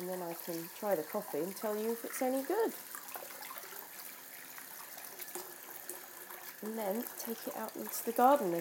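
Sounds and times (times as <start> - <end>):
water running from a kitchen tap into a sink: 0.0 - 8.6
speech: 0.1 - 3.0, 6.6 - 8.6.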